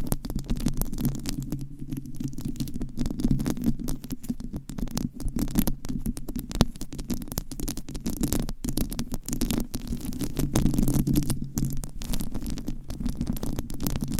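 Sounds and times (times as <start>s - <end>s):
microphone scratching: 0.0s - 14.1s.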